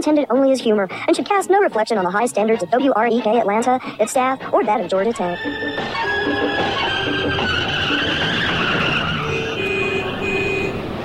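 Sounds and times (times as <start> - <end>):
speech: 0.0 - 7.2
sustained high squealing tones: 5.0 - 10.8
dense road traffic engines roaring: 5.4 - 11.0.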